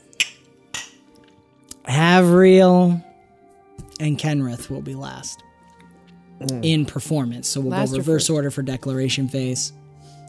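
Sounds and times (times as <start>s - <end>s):
glasses clinking in a toast: 0.1s - 1.0s
speech: 1.9s - 3.0s, 4.0s - 5.5s, 6.4s - 10.2s.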